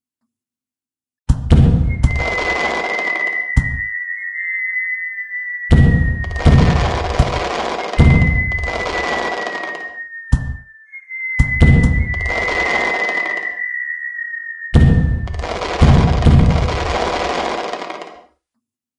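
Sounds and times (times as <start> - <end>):
fireworks booming bursts and crackling: 1.5 - 4.2, 5.6 - 10.7, 11.4 - 18.2
fireworks launched from a riverbank whistling upward: 1.7 - 18.3.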